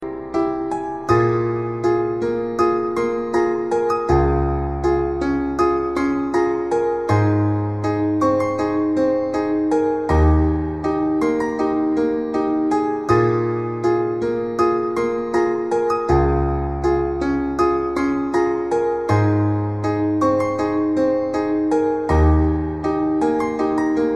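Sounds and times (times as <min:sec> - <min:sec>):
piano melody: 0:00.0 - 0:24.1.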